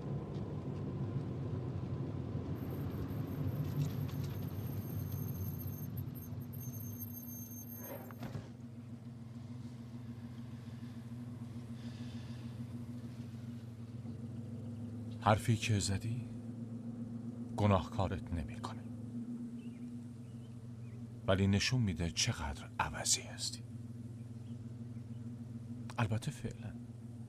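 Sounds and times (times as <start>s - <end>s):
car engine rumbling: 0.0s - 27.2s
faint high whine: 2.4s - 27.2s
clunk: 7.9s - 8.6s
speech: 15.2s - 16.4s, 17.8s - 18.8s, 21.3s - 23.8s, 26.0s - 27.0s.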